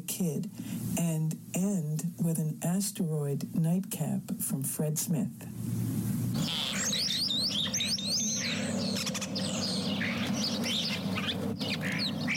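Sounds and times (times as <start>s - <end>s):
speech: 0.0s - 8.7s
steady low hum: 0.0s - 12.3s
European starling calling: 6.4s - 12.3s.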